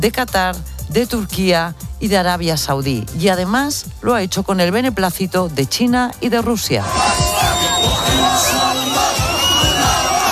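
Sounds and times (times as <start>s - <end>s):
speech: 0.0s - 7.6s
crowd of Palestinians cheering and shouting in the Gaza Strip: 6.8s - 10.3s.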